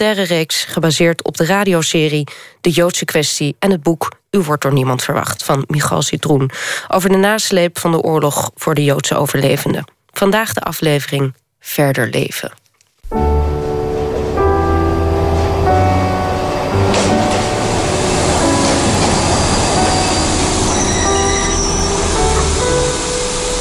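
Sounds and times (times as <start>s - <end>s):
speech: 0.0s - 13.6s
train rumbling while arriving at a station: 13.1s - 23.5s
train wheels squealing and screeching: 15.2s - 23.5s.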